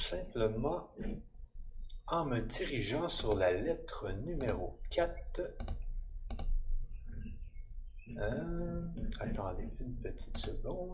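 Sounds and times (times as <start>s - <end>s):
faint low hum: 0.0s - 10.9s
speech: 0.1s - 1.3s, 2.1s - 5.8s, 8.1s - 10.9s
computer mouse double-clicking: 5.6s - 6.6s.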